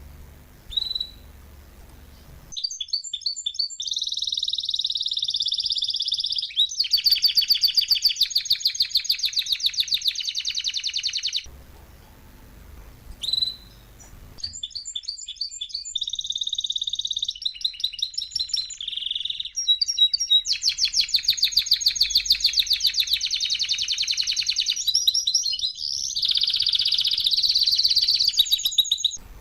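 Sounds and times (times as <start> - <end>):
faint hiss: 0.0 - 2.6, 11.5 - 14.6, 29.2 - 29.4
male Belgian canary singing rattling rolls and trills: 0.4 - 29.4.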